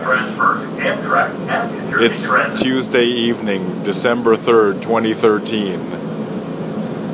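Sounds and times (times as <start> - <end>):
voice-like murmur: 0.0 - 3.8
hiss and low rumble of an automated airport train in motion: 0.0 - 7.1
speech: 2.0 - 6.1.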